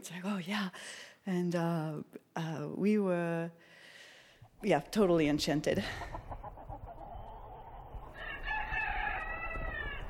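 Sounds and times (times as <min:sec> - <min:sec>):
speech: 0:00.0 - 0:03.8, 0:04.6 - 0:06.6
rooster crowing: 0:08.1 - 0:10.0.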